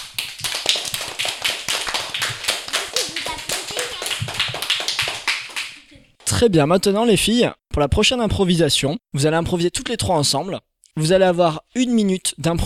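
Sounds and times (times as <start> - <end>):
audience applause: 0.0 - 5.9
speech: 6.4 - 12.6.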